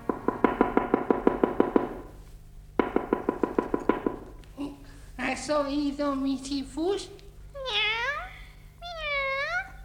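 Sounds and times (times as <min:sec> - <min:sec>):
rapid firm knocking on a wooden door: 0:00.0 - 0:02.2, 0:02.8 - 0:04.4
faint low hum: 0:00.0 - 0:09.8
speech: 0:05.3 - 0:07.8.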